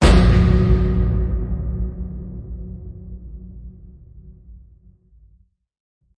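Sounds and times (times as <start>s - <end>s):
metal landing hit: 0.0s - 4.5s.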